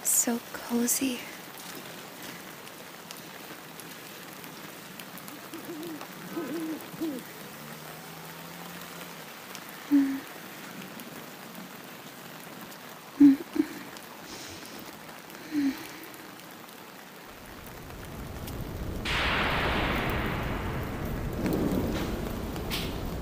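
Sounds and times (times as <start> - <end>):
steady rain pattering against a window: 0.0 - 23.2
speech: 0.2 - 1.4
soft hooting calls: 5.2 - 7.4.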